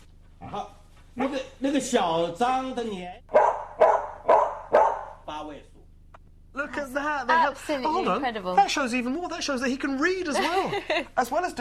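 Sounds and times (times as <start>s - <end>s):
speech: 1.7s - 3.2s, 7.2s - 11.5s
dog barking: 3.3s - 5.2s
laughter: 10.3s - 11.2s.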